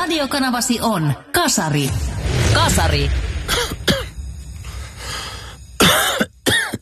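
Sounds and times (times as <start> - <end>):
speech: 0.1 - 3.8
person coughing harshly: 3.5 - 4.2, 5.8 - 6.8
rough breathy sounds: 4.6 - 5.8.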